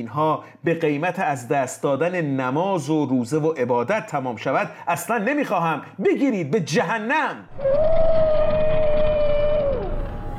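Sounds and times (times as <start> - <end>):
speech: 0.0 - 9.3
eerie demonic roar with moaning tone and low growl: 7.5 - 10.3.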